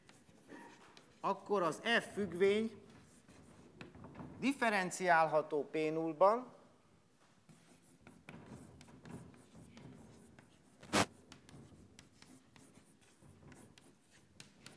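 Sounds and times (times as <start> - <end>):
pen strokes of handwriting while working through a math theorem: 0.0 - 1.2, 2.9 - 3.7, 7.5 - 14.7
speech: 1.2 - 2.8, 4.4 - 6.6.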